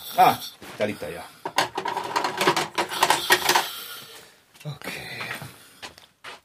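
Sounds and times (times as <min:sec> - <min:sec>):
speech: 0:00.2 - 0:01.4, 0:04.6 - 0:05.0
screwdriver clicking and rattling while working on bicycles: 0:01.5 - 0:03.7.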